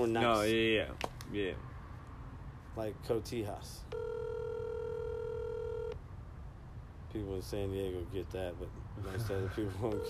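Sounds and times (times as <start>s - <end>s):
speech: 0.0s - 1.7s, 2.8s - 4.5s, 7.1s - 10.0s
steady electronic telephone tone of an unanswered phone call: 3.9s - 6.0s, 9.8s - 10.0s.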